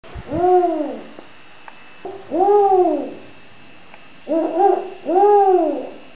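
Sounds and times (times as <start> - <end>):
Bubo africanus calling: 0.3 - 1.1, 2.1 - 3.3, 4.2 - 6.0.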